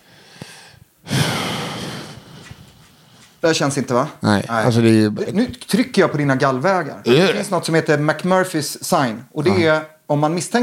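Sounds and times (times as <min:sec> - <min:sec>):
deep breath in during a medical exam: 0:00.0 - 0:03.3
speech: 0:03.4 - 0:10.6.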